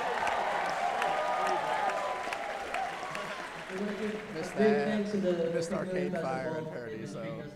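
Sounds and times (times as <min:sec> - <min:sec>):
crowd applauding, many hands clapping: 0:00.0 - 0:05.6
murmur of voices: 0:03.1 - 0:07.5
speech: 0:04.0 - 0:07.5.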